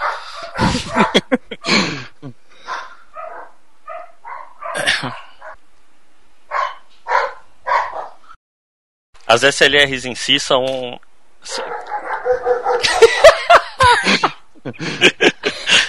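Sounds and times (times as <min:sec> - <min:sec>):
dog barking: 0:00.0 - 0:01.3, 0:02.6 - 0:05.6, 0:06.5 - 0:08.2, 0:11.5 - 0:13.4
laughter: 0:00.6 - 0:02.3, 0:12.7 - 0:15.8
speech: 0:00.7 - 0:02.4, 0:09.3 - 0:11.7.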